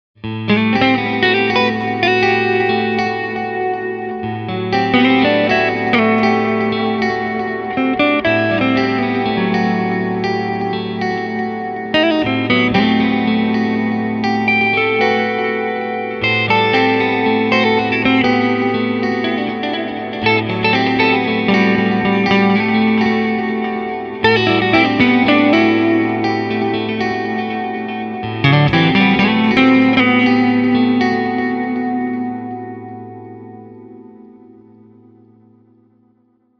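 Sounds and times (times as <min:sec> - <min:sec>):
guitars: 0:00.2 - 0:36.5.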